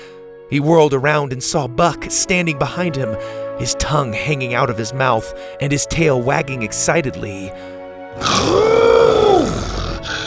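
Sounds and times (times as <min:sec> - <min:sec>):
speech: 0:00.5 - 0:09.0
person imitating an excited T-Rex roar: 0:08.2 - 0:10.2.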